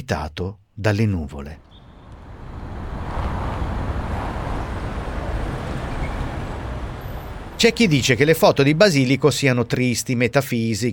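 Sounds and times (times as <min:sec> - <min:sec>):
speech: 0:00.1 - 0:01.8, 0:07.6 - 0:10.9
city traffic with cars rumbling past: 0:01.6 - 0:10.2.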